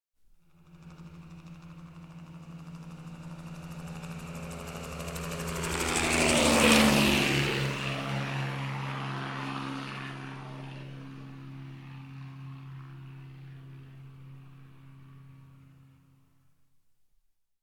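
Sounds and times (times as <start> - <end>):
Luftwaffe helicopter flying past: 0.4 - 16.7.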